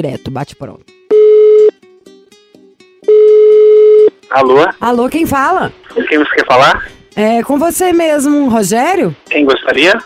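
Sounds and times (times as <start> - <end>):
speech: 0.0 - 1.0, 4.3 - 10.0
telephone dialing tone while placing a call: 1.1 - 1.7, 3.1 - 4.1.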